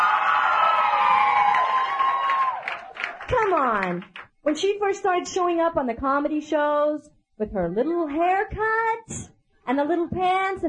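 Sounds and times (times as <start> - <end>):
large crowd cheering and whooping: 0.0 - 3.3
speech: 3.8 - 10.6.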